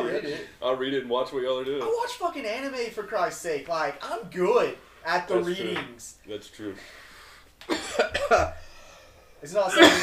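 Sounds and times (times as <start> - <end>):
speech: 0.2 - 7.0, 9.4 - 10.0
harsh raspy coughing fit: 7.7 - 8.6, 9.7 - 10.0.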